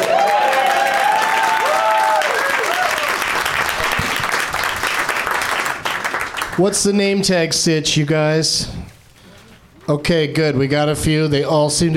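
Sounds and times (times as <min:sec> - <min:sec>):
audience whoops and cheers: 0:00.0 - 0:03.3
audience applause at a show taping in a comics-store showroom: 0:00.0 - 0:06.6
speech: 0:06.6 - 0:08.8, 0:09.9 - 0:11.9.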